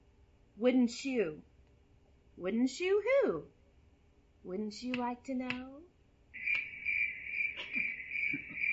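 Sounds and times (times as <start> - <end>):
speech: 0.6 - 1.5, 2.4 - 3.6, 4.4 - 5.9
crickets chirping: 6.4 - 8.7.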